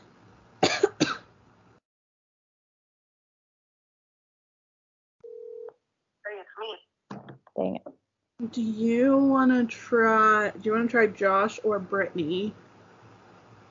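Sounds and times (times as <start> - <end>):
sharp cough-like noise: 0.6 - 1.3
brief steady electronic phone tone: 5.2 - 5.7
speech: 6.6 - 6.9, 7.6 - 12.6.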